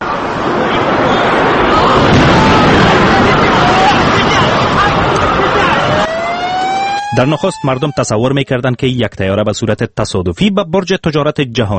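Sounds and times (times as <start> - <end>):
emergency sirens wailing: 0.1 - 8.4
chaotic street commotion with crowd shouting: 0.2 - 7.9
speech: 7.2 - 11.7.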